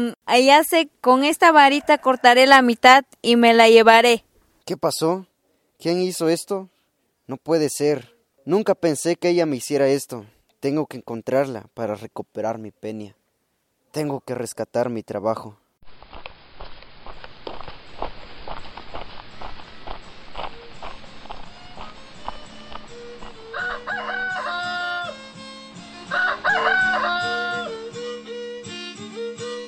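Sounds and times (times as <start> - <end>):
speech: 0.0 - 6.7, 7.3 - 13.2, 13.9 - 15.6
roosters crowing: 1.6 - 2.6, 21.2 - 25.4, 26.0 - 27.9
rhythmic clopping taps: 17.1 - 23.6.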